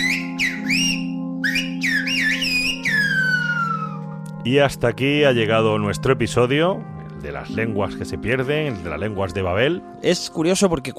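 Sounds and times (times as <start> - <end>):
person whistling phrases in Silbo Gomero whistled language: 0.0 - 4.0
speech: 4.4 - 10.9.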